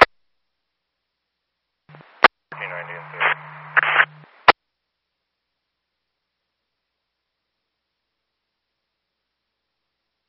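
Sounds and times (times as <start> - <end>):
dispatch two-way radio static hiss: 1.9 - 4.6.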